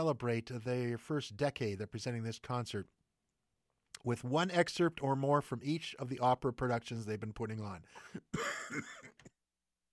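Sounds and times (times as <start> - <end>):
speech: 0.0 - 3.0, 4.0 - 9.1
person giving a throaty raspy cough: 8.0 - 9.3.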